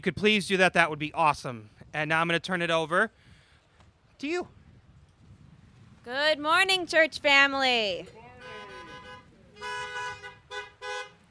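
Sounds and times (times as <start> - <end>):
speech: 0.0 - 3.2, 4.2 - 4.6, 6.0 - 8.2
car horns honking outdoors: 8.2 - 11.3.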